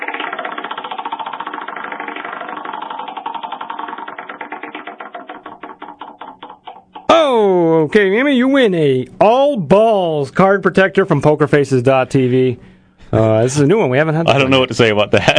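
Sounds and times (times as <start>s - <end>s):
prize wheel spinning at a poker game giveaway: 0.0s - 7.4s
speech: 7.8s - 15.3s.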